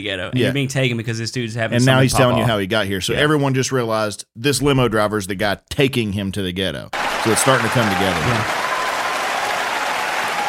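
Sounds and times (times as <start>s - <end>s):
speech: 0.0s - 8.6s
crowd clapping: 6.9s - 10.4s.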